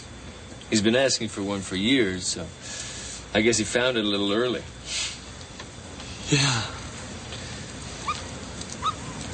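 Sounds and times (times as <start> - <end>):
speech: 0.7 - 5.1, 6.3 - 6.8
young brown puppy whimpering: 8.0 - 9.3.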